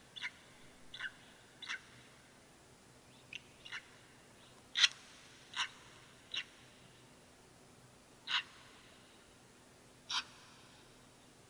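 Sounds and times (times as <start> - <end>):
hissy background: 0.0 - 11.4
red-rumped swallow chirping: 0.2 - 2.0, 3.3 - 4.0, 4.8 - 6.6, 8.3 - 8.6.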